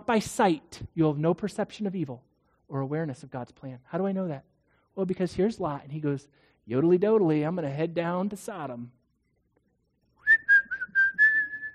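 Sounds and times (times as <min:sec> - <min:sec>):
speech: 0:00.1 - 0:09.0
person whistling a short breezy carefree tune: 0:10.2 - 0:11.7.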